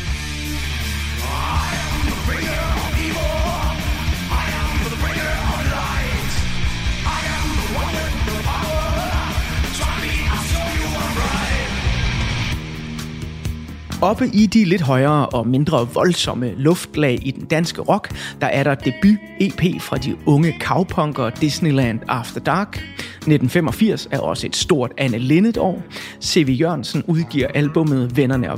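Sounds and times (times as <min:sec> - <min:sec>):
Danish thrash metal with distorted guitars and pounding drums: 0:00.0 - 0:16.5
harsh shouted thrash metal vocal: 0:01.0 - 0:12.2
speech: 0:14.0 - 0:28.5.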